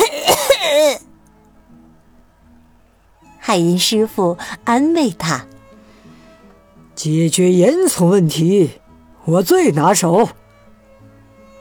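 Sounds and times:
person performing raspy strained coughing: 0:00.0 - 0:01.0
voiced choking wheeze: 0:00.0 - 0:01.0
speech: 0:03.5 - 0:05.5, 0:07.0 - 0:10.4.

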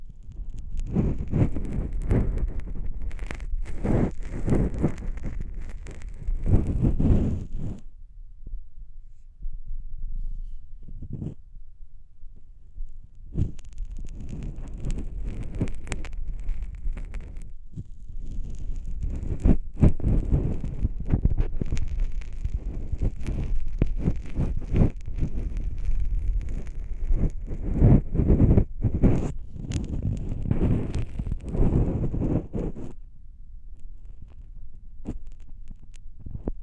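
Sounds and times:
faint rumble: 0:00.0 - 0:36.6
ear cleaning scratching alternating between ears: 0:00.3 - 0:07.8, 0:13.3 - 0:33.0.

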